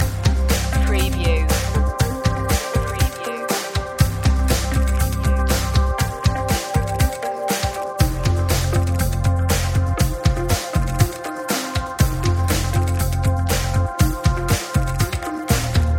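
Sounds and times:
electro rock groove loop: 0.0 - 15.9.

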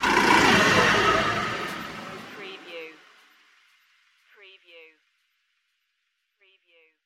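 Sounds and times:
monster machine passing: 0.0 - 3.2.

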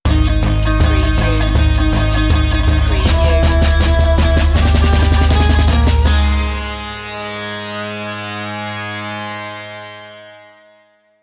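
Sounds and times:
eastern pulsing stinger: 0.3 - 7.3.

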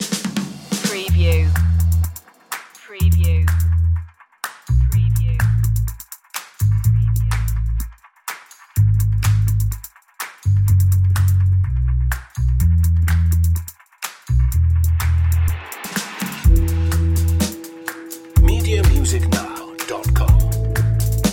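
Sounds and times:
drums: 0.0 - 21.3
bass: 1.0 - 2.2, 2.9 - 4.1, 4.7 - 6.0, 6.6 - 8.0, 8.7 - 9.9, 10.5 - 13.7, 14.3 - 15.6, 16.5 - 17.6, 18.4 - 19.4, 20.1 - 21.3.

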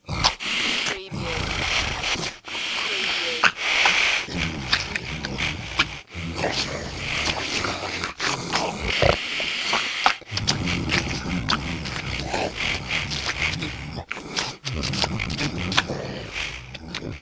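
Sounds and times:
monster grunting: 0.0 - 9.6, 10.2 - 17.1.

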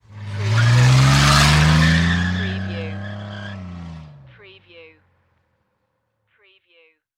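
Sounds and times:
car driving away fast: 0.0 - 4.3.

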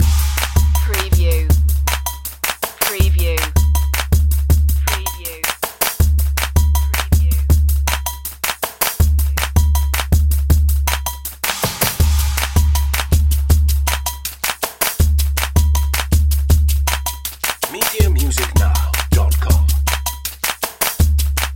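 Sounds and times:
eastern pulses loop: 0.0 - 21.5.

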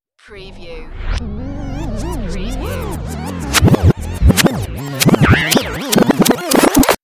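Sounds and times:
turntable scratching reversed: 0.6 - 7.0.

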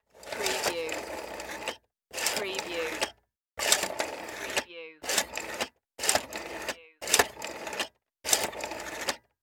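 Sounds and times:
telephone rotary dial: 0.0 - 9.4.

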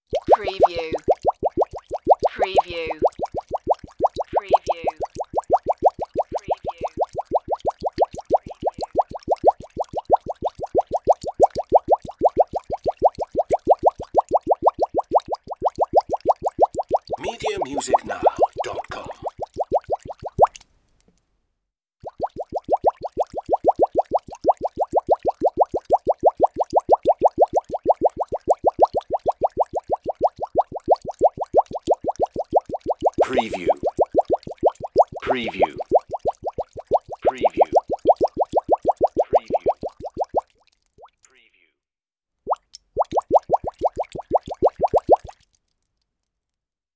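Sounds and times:
steady bubbling: 0.0 - 20.6, 22.0 - 41.2, 42.5 - 45.6.

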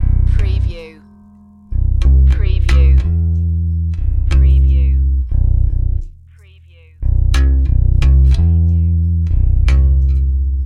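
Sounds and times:
hip hop bass guitar loop: 0.0 - 10.6.

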